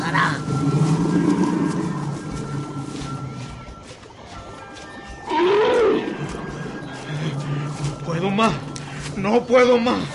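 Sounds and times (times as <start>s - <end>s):
tiger low rumbling growl: 0.0s - 3.4s, 5.3s - 9.0s
speech: 8.4s - 8.6s, 9.2s - 10.1s.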